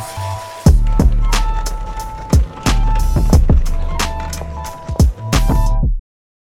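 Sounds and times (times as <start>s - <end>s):
sharp metallic shopping cart clatters: 0.0s - 5.7s
shopping cart rolling rumble in a produced jingle: 0.0s - 5.8s.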